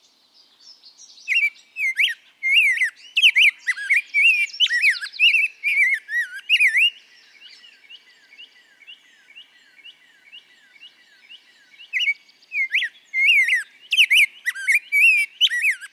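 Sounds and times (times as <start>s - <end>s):
Rose-breasted grosbeak singing a sweet warbled phrase of looping whistled notes: 0.0s - 15.9s.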